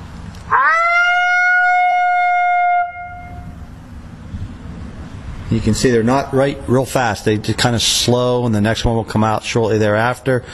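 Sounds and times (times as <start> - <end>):
person imitating a soft high-pitched female lonesome howl: 0.5 - 3.3
speech: 5.5 - 10.5.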